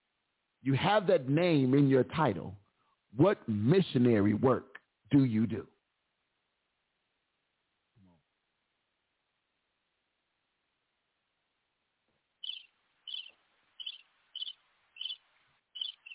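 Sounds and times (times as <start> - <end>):
speech: 0.6 - 5.7
crickets chirping: 12.4 - 16.1.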